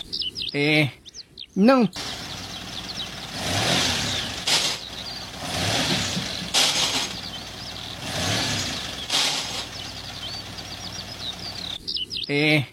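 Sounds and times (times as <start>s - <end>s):
speech: 0.5s - 1.0s, 1.6s - 2.2s, 12.3s - 12.7s
car engine revving while driver cannot engage any gear: 2.0s - 11.8s
high squealing chirps: 2.0s - 11.8s.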